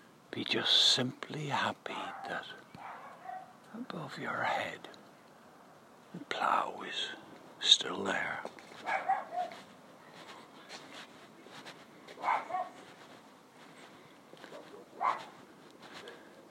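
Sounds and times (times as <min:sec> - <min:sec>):
quiet steady hiss: 0:00.0 - 0:16.4
speech: 0:00.4 - 0:02.7, 0:03.7 - 0:05.0, 0:06.1 - 0:09.6
dog barking: 0:02.1 - 0:03.6, 0:08.8 - 0:09.6, 0:12.1 - 0:12.9, 0:14.4 - 0:15.4.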